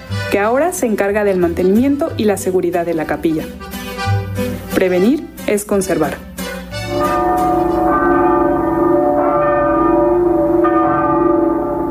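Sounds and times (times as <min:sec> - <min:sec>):
speech: 0:00.3 - 0:03.7, 0:04.8 - 0:06.3
church bells ringing: 0:06.8 - 0:11.8.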